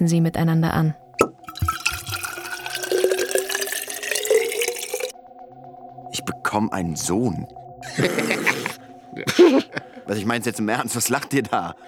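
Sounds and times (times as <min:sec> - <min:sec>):
speech: 0:00.0 - 0:01.3, 0:06.5 - 0:08.4, 0:09.2 - 0:11.8
wine from a bottle pouring into tin cups: 0:01.2 - 0:05.1
laughter: 0:07.8 - 0:10.1.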